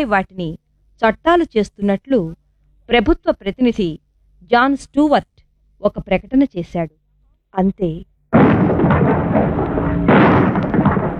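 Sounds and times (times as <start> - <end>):
speech: 0.0 - 9.6
two bombs exploding in a legislative assembly chamber: 8.4 - 11.1.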